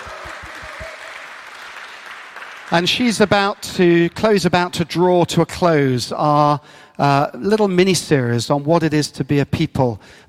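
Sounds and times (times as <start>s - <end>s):
audience applause at a church service: 0.0s - 4.5s
speech: 2.7s - 10.2s.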